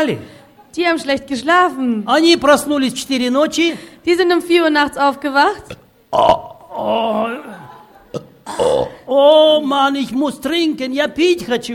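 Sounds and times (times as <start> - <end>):
speech: 0.0 - 11.7
voice imitating a loud croaky burp: 5.6 - 9.1.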